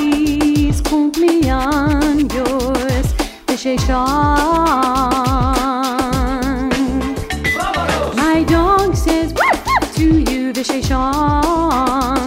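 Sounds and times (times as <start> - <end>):
music: 0.0 - 12.2
speech: 3.6 - 4.9
dog howling and yelping: 9.4 - 9.9.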